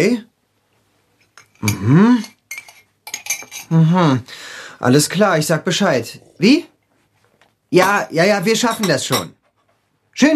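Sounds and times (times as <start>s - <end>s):
speech: 0.0s - 0.3s, 1.6s - 2.3s, 3.7s - 6.7s, 7.7s - 9.4s, 10.2s - 10.3s
cutlery and dishes clinking at breakfast in a kitchen: 1.2s - 3.8s, 7.8s - 9.8s.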